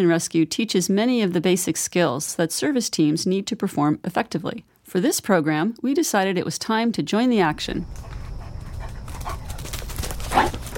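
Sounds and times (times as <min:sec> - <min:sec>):
speech: 0:00.0 - 0:08.2
German Shepherd dog paws thudding while charging toward a woman: 0:07.8 - 0:10.7
German Shepherd dog barking: 0:10.3 - 0:10.7.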